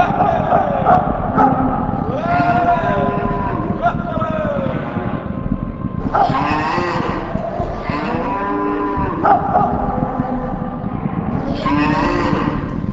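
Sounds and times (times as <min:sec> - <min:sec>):
herd of bison lowing: 0:00.0 - 0:12.9
dog barking: 0:00.1 - 0:01.8, 0:09.0 - 0:10.0.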